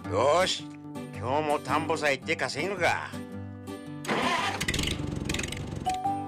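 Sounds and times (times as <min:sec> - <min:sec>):
speech: 0:00.1 - 0:03.3
tractor engine cranking over and failing to start: 0:04.1 - 0:06.0.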